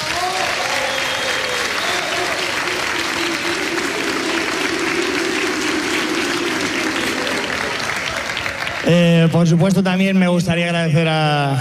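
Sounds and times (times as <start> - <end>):
crowd cheering: 0.0 - 9.7
large audience applauding: 0.0 - 9.7
faint crowd voices: 1.4 - 8.9
speech: 8.9 - 11.5.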